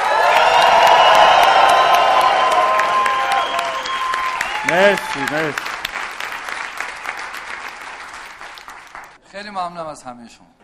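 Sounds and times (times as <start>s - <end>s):
large crowd screaming and cheering: 0.0s - 6.3s
scattered claps from crowd: 0.0s - 9.2s
speech: 4.7s - 5.8s, 9.4s - 10.6s.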